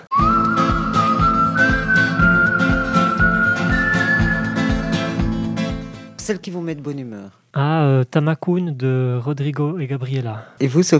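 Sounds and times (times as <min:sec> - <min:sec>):
bright whistled melody with long smooth notes: 0:00.0 - 0:05.6
strummed accompaniment: 0:00.1 - 0:06.3
steady punchy drum beat: 0:00.2 - 0:06.0
speech: 0:06.4 - 0:10.9.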